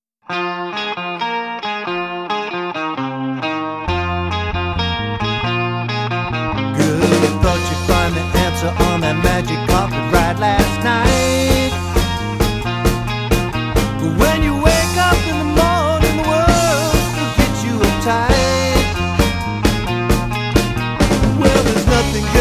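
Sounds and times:
classic rock band playing: 0:00.3 - 0:22.4.

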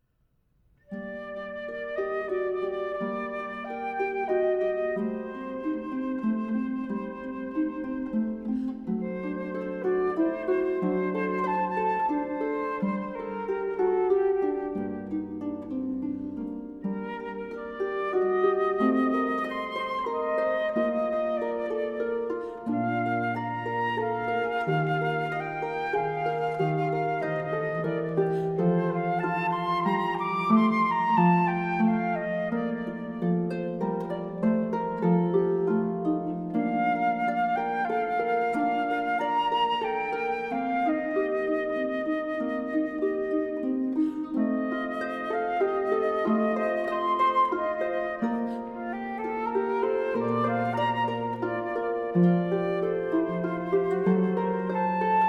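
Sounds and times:
flute playing a siciliano: 0:00.8 - 0:55.2
harp playing a siciliano: 0:00.8 - 0:55.2.

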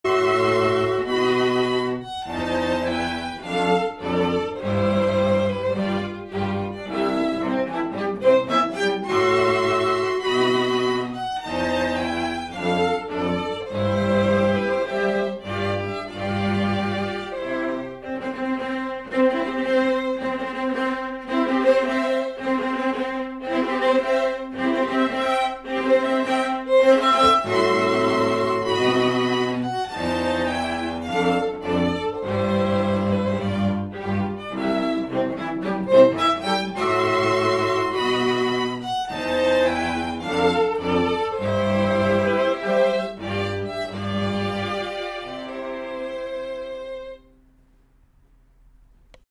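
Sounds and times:
string quartet playing: 0:00.0 - 0:47.7.

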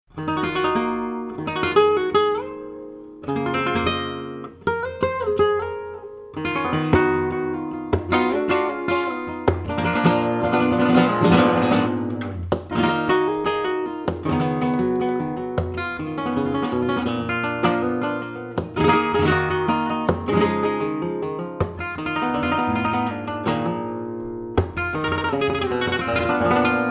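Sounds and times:
flamenco guitar playing tangos: 0:00.0 - 0:26.8.

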